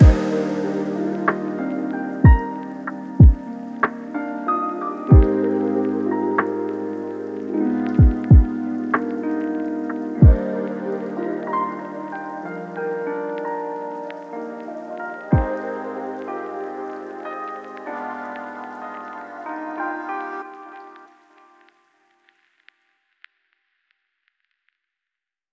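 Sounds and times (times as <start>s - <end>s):
lofi music: 0.0s - 21.8s.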